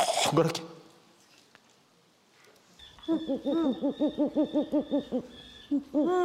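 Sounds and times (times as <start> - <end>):
speech: 0.3 - 0.7, 3.1 - 6.2
horned owl hooting: 2.8 - 6.2.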